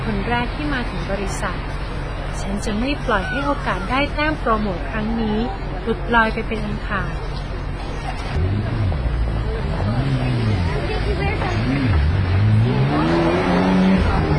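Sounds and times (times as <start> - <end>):
speech: 0.1 - 7.2, 8.0 - 8.8, 11.1 - 13.1
motorcycle taxis speeding through a narrow lane: 9.7 - 14.3.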